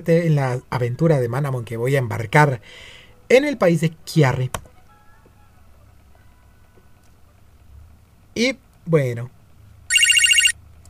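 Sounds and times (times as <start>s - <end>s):
speech: 0.0s - 4.6s, 8.4s - 9.4s
electronic telephone ringing with warbling trill: 9.9s - 10.6s.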